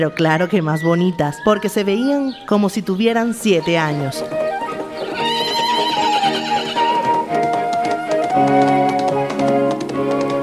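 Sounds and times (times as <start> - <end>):
speech: 0.0 - 4.4
hoof taps: 2.2 - 10.4
horse neighing: 4.4 - 7.3.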